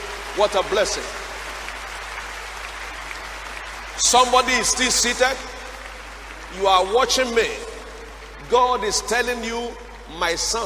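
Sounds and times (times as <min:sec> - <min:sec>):
church congregation applauding during a worship service: 0:00.0 - 0:10.6
speech: 0:00.4 - 0:01.2, 0:04.0 - 0:05.5, 0:06.5 - 0:07.7, 0:08.5 - 0:10.6.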